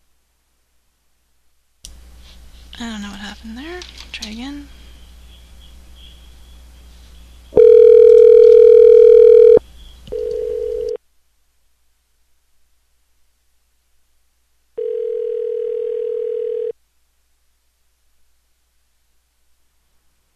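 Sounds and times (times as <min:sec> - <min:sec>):
speech: 0:03.3 - 0:04.8
ringing tone of an outgoing telephone call: 0:07.5 - 0:11.0, 0:14.8 - 0:16.8.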